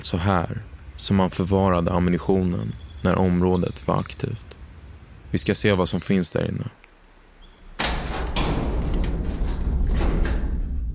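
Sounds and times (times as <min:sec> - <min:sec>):
speech: 0:00.0 - 0:04.5, 0:05.3 - 0:06.9
heavy rusty industrial metal door grinding and scraping open: 0:07.6 - 0:10.9.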